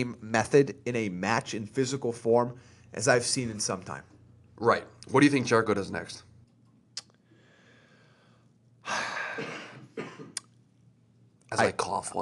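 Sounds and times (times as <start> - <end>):
speech: 0.0 - 6.3, 11.5 - 12.2
quiet breathing: 2.5 - 3.0, 7.2 - 9.9
person coughing in harsh breathy bursts: 8.9 - 10.5.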